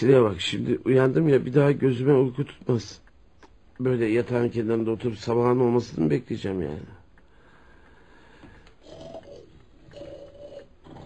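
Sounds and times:
speech: 0.0 - 3.0, 3.8 - 7.0
quiet hiss: 0.0 - 11.0
man snoring in the next room at midnight: 8.8 - 11.0.

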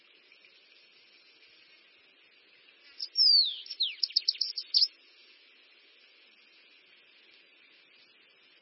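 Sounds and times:
bananaquit song: 2.9 - 5.0.

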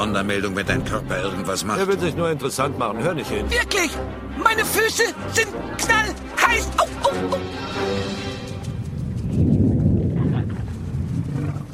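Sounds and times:
speech: 0.0 - 8.2
deep sustained rumble: 8.3 - 11.7.

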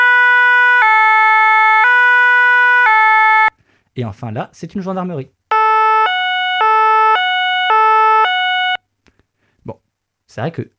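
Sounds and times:
French ambulance siren: 0.0 - 3.6, 5.5 - 8.8
speech: 4.0 - 5.4, 10.4 - 10.7.

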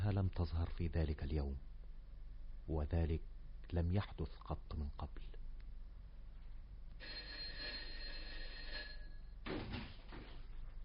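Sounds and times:
speech: 0.1 - 1.7, 2.6 - 5.4, 7.0 - 7.4
bell rung by a hotel guest: 7.0 - 9.4.

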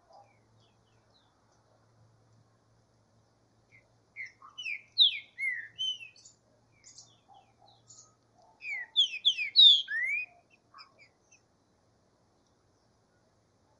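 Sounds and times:
green-winged saltator faint chips and soft notes: 3.7 - 11.4
green-winged saltator singing ringing slurred whistles in a bush: 4.2 - 6.2, 8.6 - 10.3.

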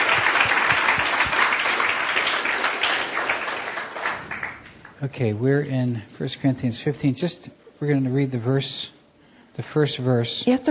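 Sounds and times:
church congregation clapping: 0.0 - 5.0
speech: 5.0 - 9.0, 9.6 - 10.7.

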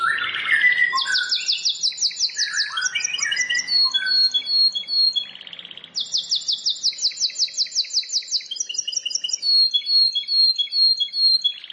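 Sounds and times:
Plain Prinia song with rapid high notes, chirps and whistled ending: 0.0 - 11.7.

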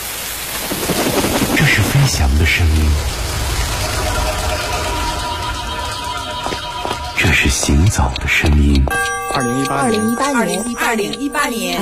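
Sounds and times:
wind: 0.0 - 8.1
rain: 0.0 - 8.4
speech: 1.7 - 3.2, 7.4 - 11.8.

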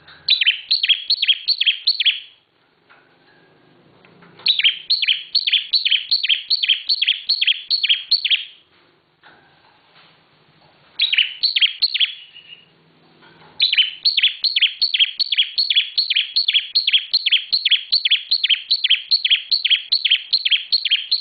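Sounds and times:
bar-winged prinia singing downslurred high notes: 0.3 - 2.4, 4.4 - 8.6, 11.0 - 12.7, 13.6 - 21.1.

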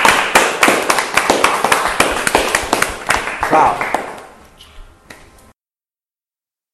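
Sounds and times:
small group applauding: 0.0 - 4.4
speech: 3.5 - 3.9.

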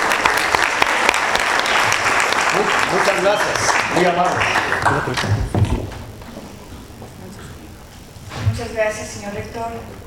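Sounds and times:
audience applause at a university panel event: 0.0 - 5.7
speech: 2.9 - 5.6, 8.6 - 10.0.

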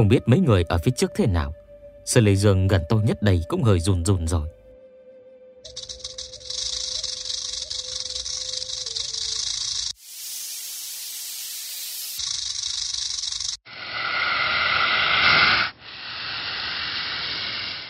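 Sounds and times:
speech: 0.0 - 4.6, 5.6 - 6.0
swarm of snakes hissing: 5.7 - 17.8.

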